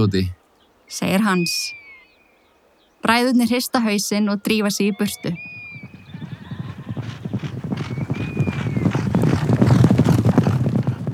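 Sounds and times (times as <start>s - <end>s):
speech: 0.0s - 1.8s, 3.0s - 5.6s
ridden goat's hooves clip-clopping: 5.9s - 11.1s.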